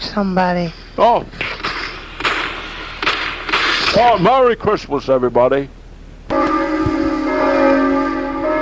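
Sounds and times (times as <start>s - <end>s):
speech: 0.2s - 1.5s, 3.9s - 5.8s
church bells ringing: 6.3s - 8.6s.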